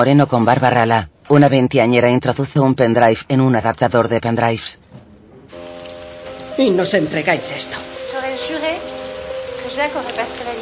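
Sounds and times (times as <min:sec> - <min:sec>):
speech: 0:00.0 - 0:04.9, 0:06.6 - 0:08.6, 0:09.7 - 0:10.6
artificial rain falling in a film scene: 0:05.5 - 0:10.6.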